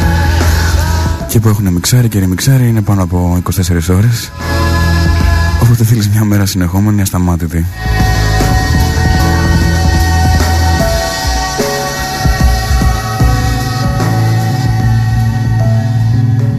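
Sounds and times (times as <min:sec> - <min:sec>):
recorded song from a band's debut album: 0:00.0 - 0:06.8, 0:07.7 - 0:16.5
speech: 0:01.3 - 0:04.6, 0:05.7 - 0:08.2.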